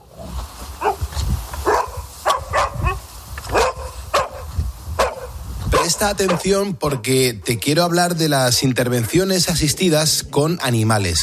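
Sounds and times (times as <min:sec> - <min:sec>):
dog barking in short sharp bursts: 0:00.8 - 0:01.0, 0:01.6 - 0:07.0
speech: 0:06.0 - 0:11.2.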